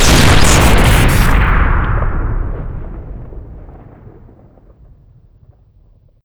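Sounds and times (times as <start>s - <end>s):
Bofors autocannon shooting: 0.0s - 2.7s.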